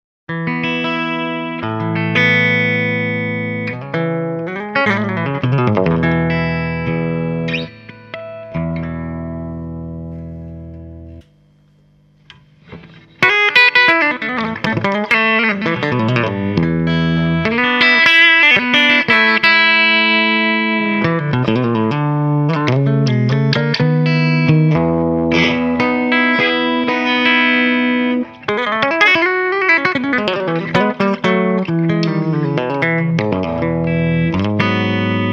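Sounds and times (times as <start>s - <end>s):
guitar with compressor active: 0.3s - 35.3s.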